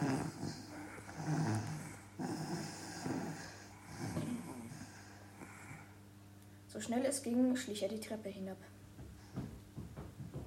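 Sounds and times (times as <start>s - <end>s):
soft snoring: 0.0s - 6.0s
speech: 6.8s - 8.8s.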